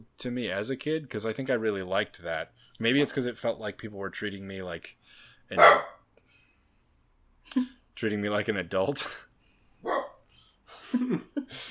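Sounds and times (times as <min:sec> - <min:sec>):
speech: 0:00.2 - 0:06.0, 0:07.4 - 0:10.0, 0:10.9 - 0:11.6
dog barking at a window: 0:05.6 - 0:06.0, 0:09.8 - 0:10.2.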